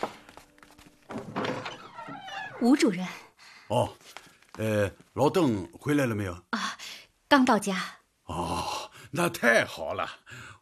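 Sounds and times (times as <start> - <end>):
door being opened at home: 1.1 - 2.5
speech: 2.6 - 6.6, 7.3 - 10.5.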